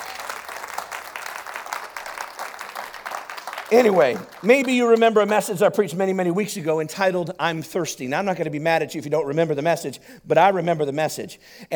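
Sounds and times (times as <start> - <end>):
room full of people clapping: 0.0 - 5.6
speech: 3.7 - 11.7.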